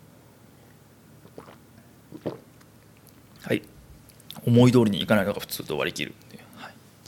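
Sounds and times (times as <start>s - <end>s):
quiet noise: 0.0s - 7.0s
wet gulping swallows of drinking water: 1.2s - 2.5s
speech: 3.5s - 3.7s, 4.5s - 6.2s.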